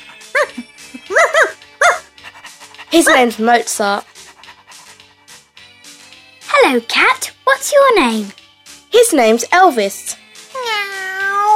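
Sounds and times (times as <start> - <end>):
dog barking: 0.0 - 2.2
speech: 2.9 - 4.1, 6.7 - 10.2.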